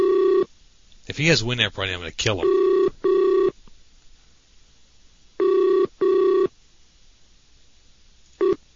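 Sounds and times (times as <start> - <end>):
Skype call ringback tone: 0.0 - 0.5, 2.4 - 3.6, 5.4 - 6.5, 8.4 - 8.6
speech: 1.1 - 2.7.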